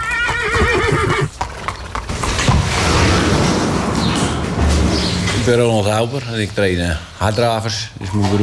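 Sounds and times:
harness-racing trotter whinnying loudly: 0.0s - 1.4s
harness-racing trotter hoofbeats clattering: 1.2s - 8.4s
speech: 5.5s - 8.4s.

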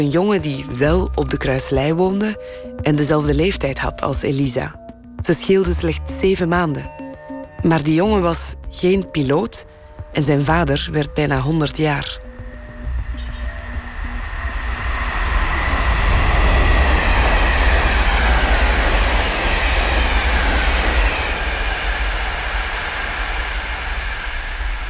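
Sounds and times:
speech: 0.0s - 7.0s, 7.6s - 12.2s
faint metallic whine from train carriage: 12.2s - 24.8s
train carriage rattling on rails on a ride back to Antwerp: 13.1s - 24.8s.

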